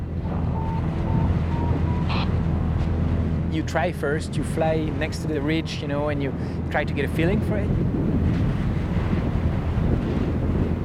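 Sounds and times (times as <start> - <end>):
strong wind roaring against the microphone on a mountain ridge: 0.0 - 10.8
speech: 3.6 - 8.6.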